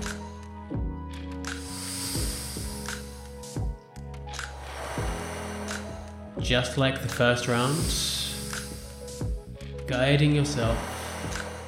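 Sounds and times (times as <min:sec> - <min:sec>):
gentle sustained music tones: 0:00.0 - 0:11.6
slow breaths in and out during a calm beginner breathwork exercise: 0:01.4 - 0:06.4, 0:07.5 - 0:11.6
speech: 0:06.4 - 0:08.1, 0:09.9 - 0:10.9.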